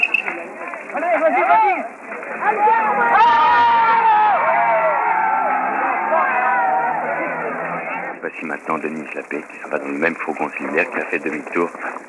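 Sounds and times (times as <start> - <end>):
people shouting in a crowd: 0.0 - 8.1
large crowd of at least 2000 people outside a courthouse roaring: 0.3 - 8.2
speech: 8.4 - 12.0.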